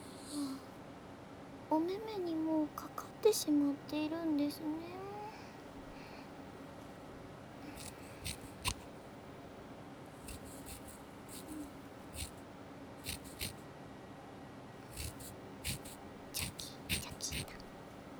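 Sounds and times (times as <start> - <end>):
speech: 1.7 - 5.0
scissors snipping through hair while trimming bangs: 7.6 - 9.0, 10.2 - 12.4, 13.0 - 13.6, 14.9 - 18.0.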